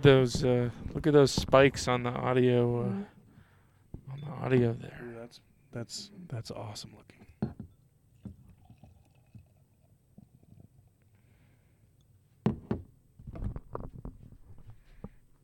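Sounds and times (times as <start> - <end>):
speech: 0.0 - 3.1, 4.1 - 7.6
beer pouring in glugs and splashes: 8.1 - 11.0.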